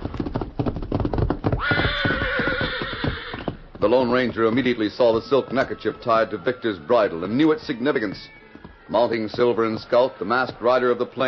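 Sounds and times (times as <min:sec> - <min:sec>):
horse galloping hoofbeats: 0:00.0 - 0:11.2
horse whinnying: 0:01.4 - 0:10.3
speech: 0:03.8 - 0:11.2.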